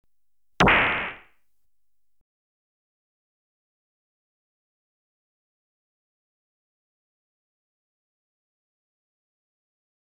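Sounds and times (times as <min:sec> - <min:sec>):
electronically generated stun gun single shot: 0:00.6 - 0:01.2.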